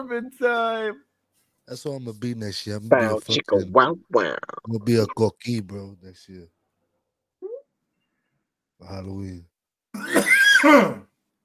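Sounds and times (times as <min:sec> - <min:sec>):
speech: 0:00.0 - 0:01.1, 0:01.7 - 0:06.6, 0:08.8 - 0:11.1
strained raspy wheezy cough: 0:10.0 - 0:11.1.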